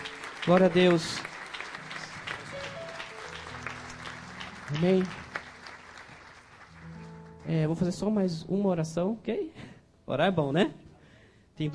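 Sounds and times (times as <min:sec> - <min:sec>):
audience applauding: 0:00.0 - 0:07.5
speech: 0:00.4 - 0:01.3, 0:04.7 - 0:05.2, 0:07.4 - 0:10.8, 0:11.6 - 0:11.7.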